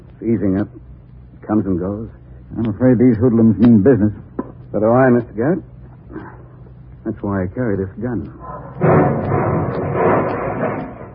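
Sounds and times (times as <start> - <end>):
speech: 0.2 - 0.9, 1.5 - 6.3, 7.0 - 9.4
car bomb explosion: 8.4 - 11.1
heavy sustained rumbling roar after a car bomb explosion: 8.4 - 11.1.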